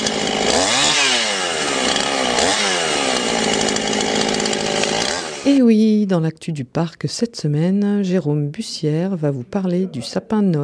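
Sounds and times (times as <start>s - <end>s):
chainsaw cutting a small tree: 0.0s - 5.6s
speech: 5.5s - 10.6s.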